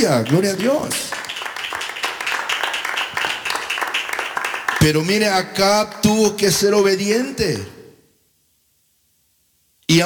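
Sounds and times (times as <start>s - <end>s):
speech: 0.0s - 1.2s, 4.8s - 7.8s, 9.9s - 10.0s
person preaching a sermon: 0.0s - 1.3s, 4.8s - 7.9s, 9.9s - 10.0s
church audience clapping hands in praise during a sermon: 0.0s - 6.2s.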